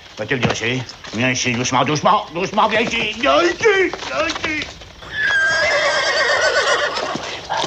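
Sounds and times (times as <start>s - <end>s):
speech: 0.2s - 4.8s
horse whinnying: 3.5s - 7.6s.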